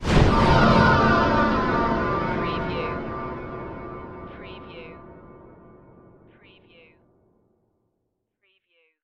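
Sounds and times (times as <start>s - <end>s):
ghostly hit: 0.0s - 6.3s.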